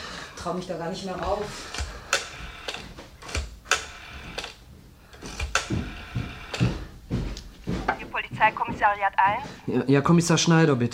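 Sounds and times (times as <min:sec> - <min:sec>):
speech: 0:00.4 - 0:01.8, 0:08.4 - 0:10.9
telephone being dialed: 0:01.7 - 0:04.6, 0:05.2 - 0:06.6.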